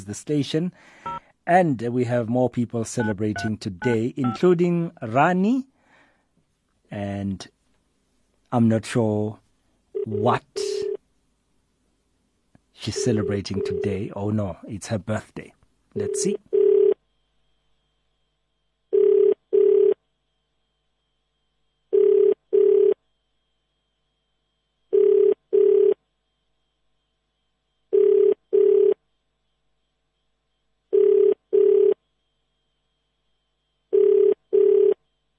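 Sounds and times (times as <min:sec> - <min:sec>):
speech: 0:00.0 - 0:05.7, 0:06.9 - 0:07.6, 0:08.5 - 0:09.4, 0:10.1 - 0:10.8, 0:12.8 - 0:16.6
phone ringback tone from a radio station call: 0:03.0 - 0:04.5, 0:10.0 - 0:11.0, 0:12.8 - 0:14.1, 0:16.0 - 0:17.2, 0:18.9 - 0:20.0, 0:21.9 - 0:23.0, 0:24.9 - 0:26.0, 0:27.9 - 0:29.1, 0:30.9 - 0:32.0, 0:33.8 - 0:35.3.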